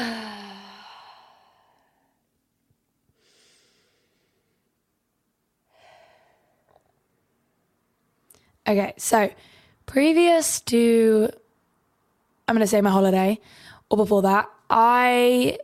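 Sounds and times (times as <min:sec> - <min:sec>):
slow deep breathing in and out: 0:00.0 - 0:02.3, 0:03.1 - 0:04.8, 0:05.6 - 0:07.0
speech: 0:08.7 - 0:11.4, 0:12.5 - 0:15.6.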